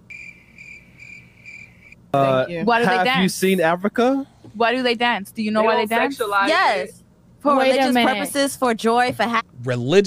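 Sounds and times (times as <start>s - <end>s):
crickets chirping: 0.0s - 2.0s
speech: 2.1s - 10.0s.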